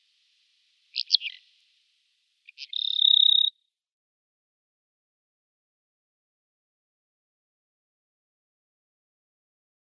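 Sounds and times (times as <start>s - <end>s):
bar-tailed lark song with trilled high whistle: 0.9s - 1.4s, 2.5s - 3.5s.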